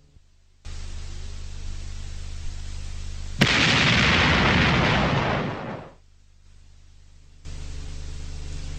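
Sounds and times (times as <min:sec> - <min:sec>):
steady hiss: 0:00.0 - 0:08.7
heavy hunting rifle gunshot echoing off trees, rocks and cliffs: 0:03.4 - 0:06.0.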